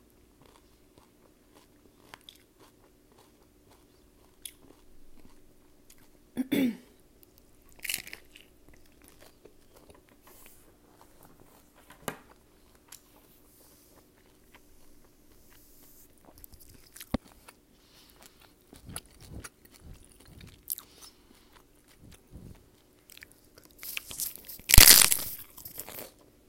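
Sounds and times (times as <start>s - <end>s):
soft chewing of hard tacos: 0.0s - 6.3s, 7.0s - 24.8s, 25.4s - 26.4s
faint low hum: 0.0s - 26.4s
crisp bites of hard tacos: 23.9s - 26.1s.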